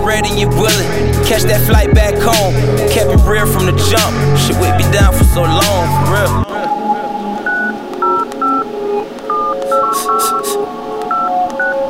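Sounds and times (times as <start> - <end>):
dense musical backing track: 0.0 - 11.8
speech: 0.2 - 6.7
telephone keypad dialing tones: 9.2 - 11.8.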